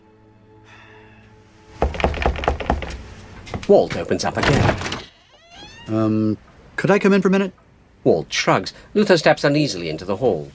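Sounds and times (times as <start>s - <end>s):
knocking on a wooden front door: 1.8s - 3.0s
speech: 3.7s - 5.0s, 5.9s - 10.5s.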